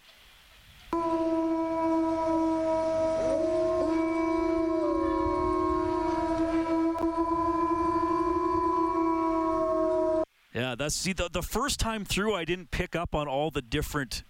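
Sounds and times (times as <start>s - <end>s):
pack of three or four wolves howling: 1.0s - 10.2s
speech: 10.8s - 14.2s.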